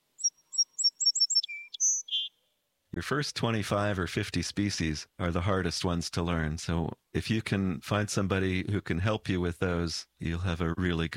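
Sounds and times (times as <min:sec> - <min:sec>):
song sparrow song: 0:00.0 - 0:02.6
speech: 0:02.9 - 0:11.1.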